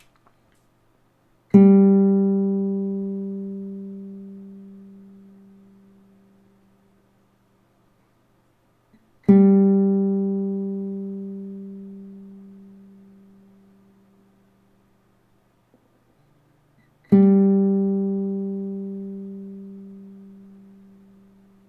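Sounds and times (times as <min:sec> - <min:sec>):
Spanish guitar third string G being tuned: 0:01.5 - 0:05.9, 0:09.2 - 0:13.8, 0:16.8 - 0:21.6.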